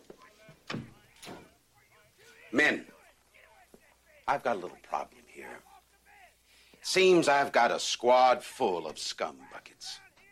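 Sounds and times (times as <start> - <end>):
door swinging shut with a solid thump: 0.7 - 1.5
speech: 2.5 - 2.9, 4.3 - 5.7, 6.8 - 10.0.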